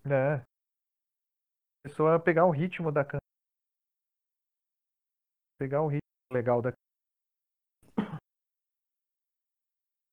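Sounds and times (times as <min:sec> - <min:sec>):
speech: 0:00.1 - 0:00.5, 0:01.8 - 0:03.2, 0:05.6 - 0:06.8
throat clearing: 0:07.8 - 0:08.3
person coughing: 0:07.9 - 0:08.3.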